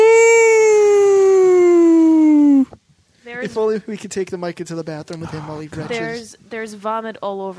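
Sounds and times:
person vocally imitating a four-alarm siren: 0:00.0 - 0:02.7
speech: 0:03.6 - 0:07.5.

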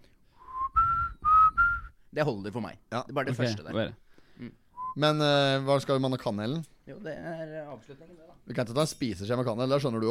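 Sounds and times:
person whistling a short melody of gliding notes: 0:00.4 - 0:02.0, 0:04.8 - 0:05.0
speech: 0:02.1 - 0:10.0.

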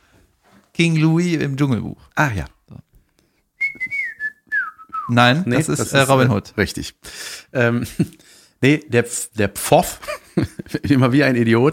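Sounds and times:
speech: 0:00.8 - 0:02.8, 0:05.1 - 0:11.7
person whistling a film melody: 0:03.6 - 0:05.1
laughter: 0:10.0 - 0:11.0.

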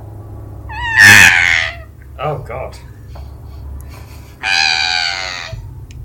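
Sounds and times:
strange high-pitched shriek: 0:00.7 - 0:01.9, 0:04.4 - 0:05.6
speech: 0:02.2 - 0:03.0.

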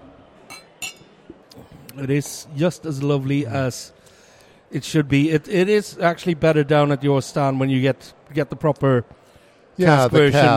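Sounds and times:
faint murmur of chatter: 0:00.0 - 0:10.5
beer glasses clinking in a toast: 0:00.5 - 0:01.2
speech: 0:02.0 - 0:04.0, 0:04.7 - 0:09.2, 0:09.8 - 0:10.5.

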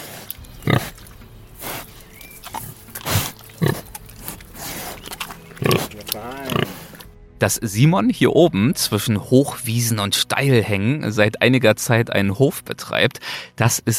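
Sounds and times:
two pigs grunting outdoors on a mountain farm: 0:00.0 - 0:07.1
farmer calling pigs outdoors on a mountain farm: 0:05.7 - 0:13.1
speech: 0:07.4 - 0:13.9.

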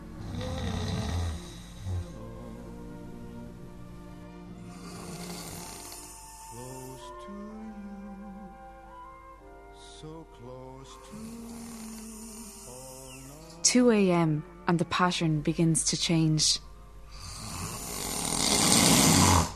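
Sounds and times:
man snoring in his sleep: 0:00.1 - 0:02.6, 0:04.7 - 0:07.2, 0:10.9 - 0:13.6, 0:17.1 - 0:19.5
soft sustained tones: 0:01.4 - 0:17.3
speech: 0:13.7 - 0:16.7.

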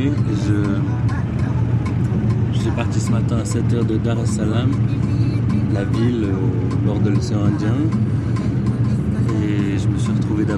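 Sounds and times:
moving modern bus engine rumble and road drone: 0:00.0 - 0:10.5
speech: 0:02.8 - 0:08.4, 0:10.2 - 0:10.5.

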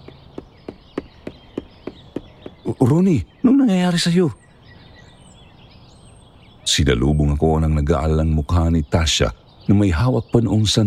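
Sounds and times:
hard footsteps approaching: 0:00.0 - 0:03.0
speech: 0:02.7 - 0:04.4, 0:06.8 - 0:10.8.

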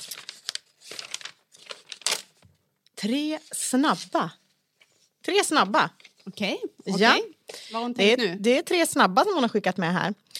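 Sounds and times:
tape and packaging ripping as a tightly taped package is torn open: 0:00.0 - 0:02.4
speech: 0:03.0 - 0:04.4, 0:05.3 - 0:10.3.

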